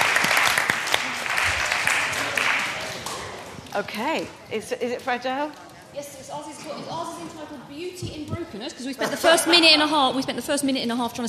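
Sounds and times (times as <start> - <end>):
audience applauding a decorated egg: 0.0 - 3.5
speech: 3.8 - 11.2
laughter: 8.8 - 10.1.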